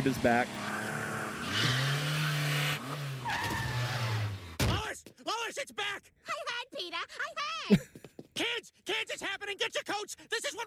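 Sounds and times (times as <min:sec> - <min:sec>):
speech: 0:00.0 - 0:00.7, 0:05.6 - 0:06.1, 0:06.8 - 0:10.6
car engine roaring: 0:00.0 - 0:04.6
car tires screeching as the vehicle swerves: 0:00.0 - 0:04.6.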